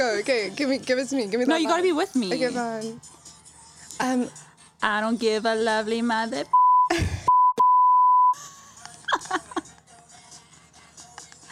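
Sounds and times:
speech: 0.0 - 3.2, 4.0 - 7.1
censor bleep: 6.5 - 8.4
laughter: 8.4 - 9.9.

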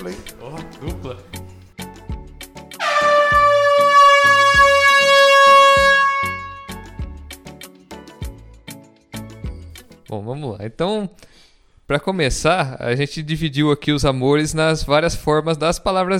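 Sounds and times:
speech: 0.0 - 1.5, 10.1 - 16.1
long loud air horn blast: 2.8 - 7.0.

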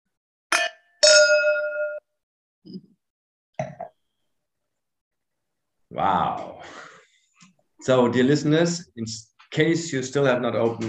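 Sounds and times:
wine glasses clinking in a toast: 0.5 - 2.0
speech: 2.6 - 3.0, 5.9 - 6.9, 7.8 - 10.8.

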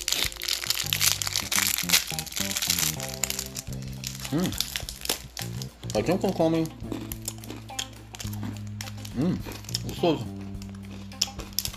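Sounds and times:
someone eating peanut brittle: 0.0 - 11.7
speech: 4.3 - 4.7, 6.0 - 6.9, 9.2 - 10.4.

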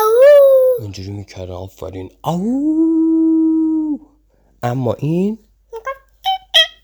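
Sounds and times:
person imitating a wolf howl: 0.0 - 0.9, 2.3 - 4.1
speech: 0.9 - 3.3, 3.9 - 5.8.

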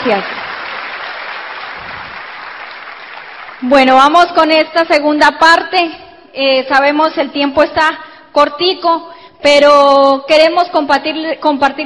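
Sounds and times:
speech: 0.0 - 0.5, 3.6 - 11.8
audience applause at an event for business leaders: 0.0 - 3.6.

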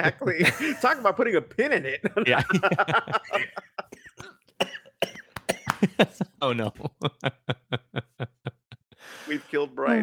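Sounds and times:
laughter: 0.0 - 1.2, 1.8 - 4.3, 5.6 - 9.0
speech: 0.0 - 3.8, 5.8 - 8.0, 9.3 - 10.0
man coughing in a harsh throaty fit: 3.9 - 6.8.

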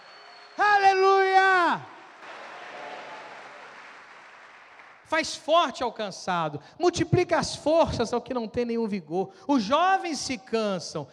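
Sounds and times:
congregation applauding: 0.0 - 5.3
speech: 5.1 - 11.1.

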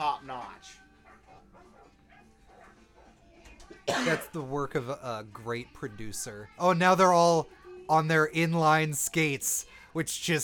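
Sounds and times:
speech: 0.2 - 1.5, 3.9 - 10.4
several dogs barking: 0.8 - 3.3.

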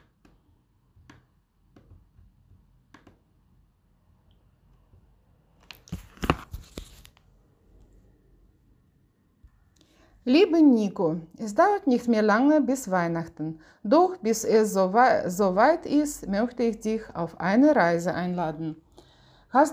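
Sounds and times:
paper rustling: 5.6 - 7.3
envelope tearing: 5.7 - 7.2
speech: 10.3 - 18.8, 19.5 - 19.7.

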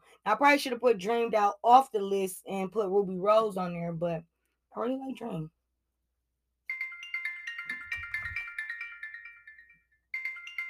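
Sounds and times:
speech: 0.2 - 5.6
mobile phone ringtone playing a bright electronic melody: 6.7 - 10.6.

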